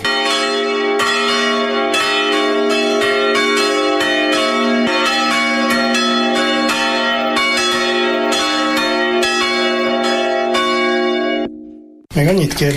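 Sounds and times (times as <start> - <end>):
three historic swinging church bells ringing in a peal: 0.0 - 12.1
speech: 12.2 - 12.7.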